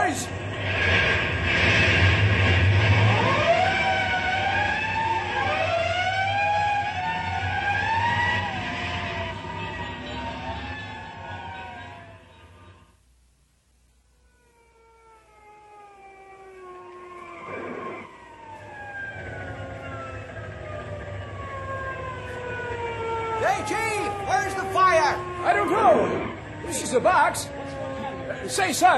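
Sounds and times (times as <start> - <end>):
fire engine siren wailing responding to a box alarm: 0.0 - 12.9, 14.1 - 28.9.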